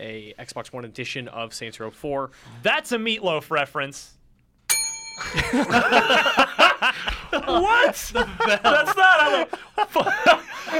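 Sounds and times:
speech: 0.2s - 4.2s, 5.2s - 10.7s
bell ringing: 4.7s - 6.8s
people laughing: 5.2s - 10.7s.

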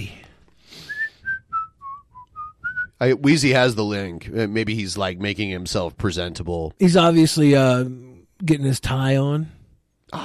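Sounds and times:
breathy puff of air: 0.6s - 1.2s
person whistling a short descending melody: 0.8s - 3.0s
speech: 3.0s - 10.2s.

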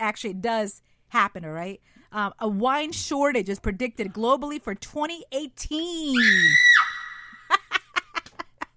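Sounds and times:
speech: 0.0s - 6.7s
baby screaming high-pitched: 6.2s - 7.5s.

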